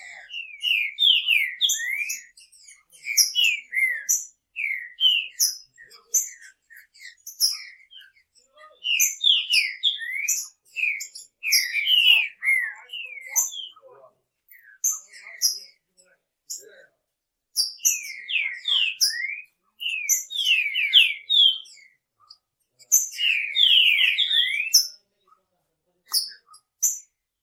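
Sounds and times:
Green-winged Saltator song of clear slurred whistles and sharper high notes: 0.0 - 13.8, 17.6 - 22.0, 23.0 - 24.9.

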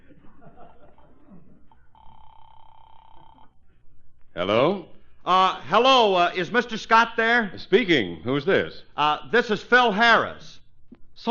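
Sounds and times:
laughter: 0.0 - 1.8
electronic telephone ring tone on the line: 1.9 - 3.6
speech: 4.4 - 10.6.

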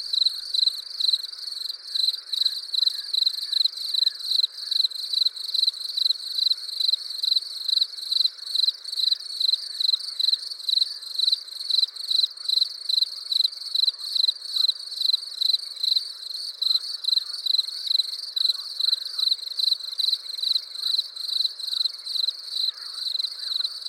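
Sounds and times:
crickets chirping: 0.0 - 23.8.

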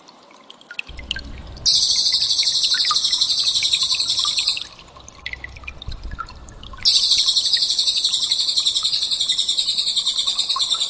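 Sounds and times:
soft scattered bird chirps: 0.9 - 5.5, 6.2 - 10.8
bird song with fast very high rattling trill: 1.6 - 4.8, 6.8 - 10.8.

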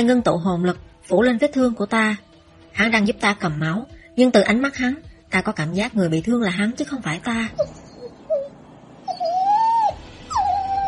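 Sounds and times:
speech: 0.0 - 7.8
dog whimpering in pain: 7.5 - 10.8.

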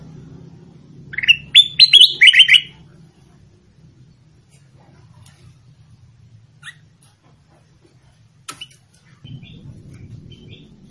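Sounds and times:
low steady hum: 0.0 - 10.8
sooty-headed bulbul song: 1.2 - 2.8.

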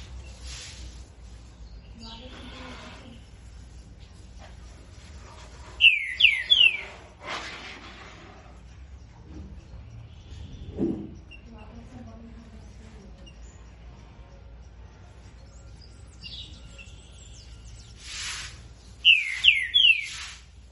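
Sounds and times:
Green-winged saltator singing after its moult: 5.8 - 7.0, 16.0 - 20.5.

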